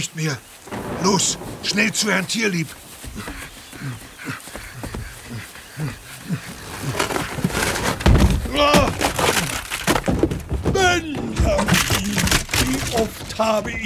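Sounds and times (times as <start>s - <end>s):
speech: 0.0s - 4.4s, 5.8s - 7.0s, 13.0s - 13.8s
wooden door crashing and splintering as an elephant bursts through: 0.5s - 3.7s, 6.6s - 13.8s
elephant trumpeting roar-like calls: 0.7s - 9.1s.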